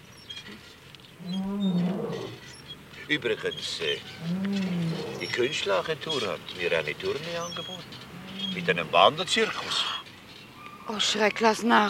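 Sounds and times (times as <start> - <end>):
lion roaring: 1.2 - 2.4, 4.2 - 5.6, 8.1 - 9.1
speech: 3.1 - 10.0, 10.9 - 11.8.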